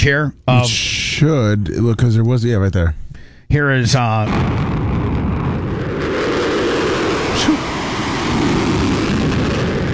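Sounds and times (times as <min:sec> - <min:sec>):
speech: 0:00.0 - 0:04.8
explosion: 0:04.3 - 0:09.9
fighter jet roaring with its afterburners on: 0:04.3 - 0:09.9.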